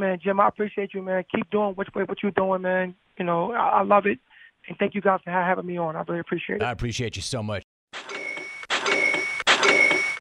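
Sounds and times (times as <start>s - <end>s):
speech: 0.0s - 8.2s
cash register cha-ching sale notification: 8.0s - 10.1s.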